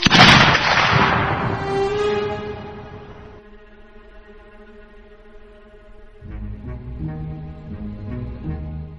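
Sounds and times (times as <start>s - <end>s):
large pistol gunshot fired at night in a duel in Toledo: 0.0s - 1.5s
sustained tonal music: 0.8s - 8.9s.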